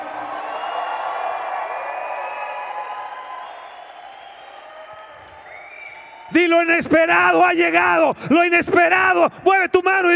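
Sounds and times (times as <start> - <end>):
audience shouting and cheering joyfully: 0.0 - 8.1
speech: 6.3 - 10.1.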